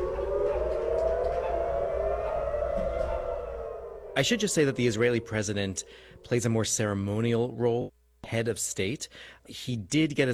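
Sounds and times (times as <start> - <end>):
air raid siren wailing: 0.0 - 7.5
speech: 4.2 - 10.3.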